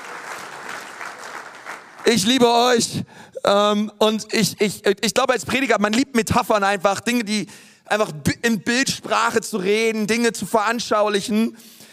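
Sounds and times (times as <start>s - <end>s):
audience applause: 0.0s - 2.4s
speech: 2.0s - 11.8s.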